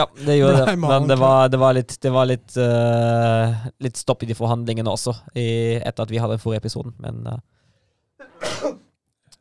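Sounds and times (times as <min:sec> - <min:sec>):
laughter: 0:00.0 - 0:01.4
speech: 0:00.0 - 0:07.6, 0:08.6 - 0:08.8
sneeze: 0:08.2 - 0:08.9.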